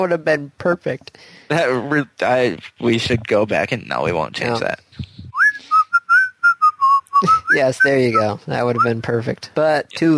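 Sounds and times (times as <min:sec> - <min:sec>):
speech: 0:00.0 - 0:04.9, 0:07.2 - 0:10.1
person whistling a short tune from a video game: 0:05.3 - 0:08.2.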